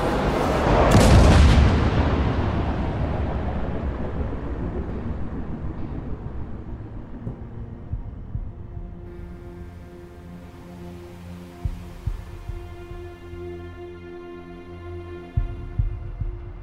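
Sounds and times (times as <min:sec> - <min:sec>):
fiery object crashing to earth with bang: 0:00.2 - 0:08.9.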